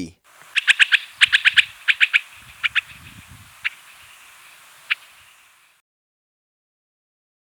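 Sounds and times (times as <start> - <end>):
Andean snipe calling in Ecuador: 0.0 - 5.8
low background noise: 0.0 - 5.8.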